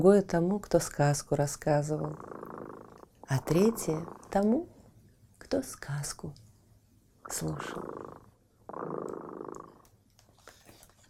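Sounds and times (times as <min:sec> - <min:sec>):
speech: 0:00.0 - 0:02.3, 0:03.3 - 0:04.7, 0:05.4 - 0:06.4, 0:07.3 - 0:09.0
cat purring: 0:01.6 - 0:04.9, 0:07.3 - 0:09.9.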